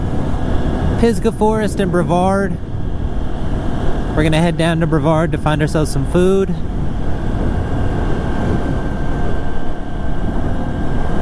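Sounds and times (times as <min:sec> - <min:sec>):
faint whining tone: 0:00.0 - 0:11.2
motorcycle engine droning while riding between Pisgah Forest and Brevard: 0:00.0 - 0:11.2
wind buffeting: 0:00.0 - 0:11.2
speech: 0:01.0 - 0:02.7, 0:04.2 - 0:06.7.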